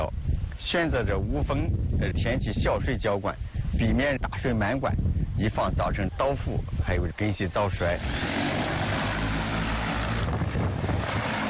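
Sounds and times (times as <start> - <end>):
speech: 0.0 - 8.5
agricultural spraying drones flying overhead over wheat in Xinxiang China: 6.0 - 11.4.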